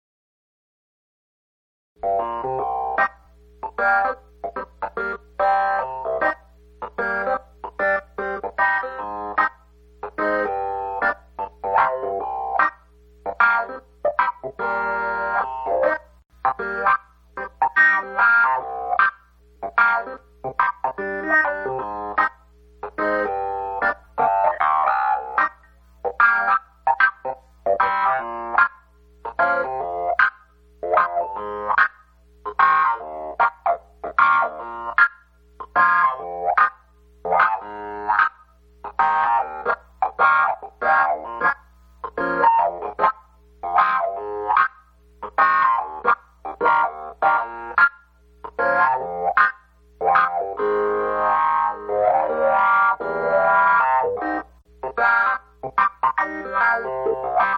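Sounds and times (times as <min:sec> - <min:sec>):
clavinet: 0:02.0 - 0:57.5.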